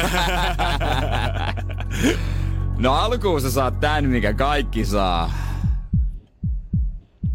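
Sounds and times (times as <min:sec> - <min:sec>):
speech: 0:00.0 - 0:00.8, 0:02.0 - 0:05.4
laughter: 0:00.0 - 0:02.2
deep heartbeat thudding: 0:05.6 - 0:07.3.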